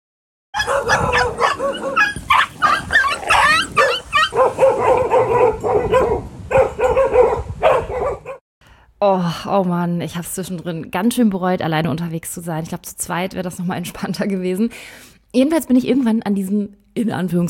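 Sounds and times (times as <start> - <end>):
many dogs barking, yipping and whining: 0.6 - 8.4
speech: 0.8 - 1.3, 9.0 - 17.4.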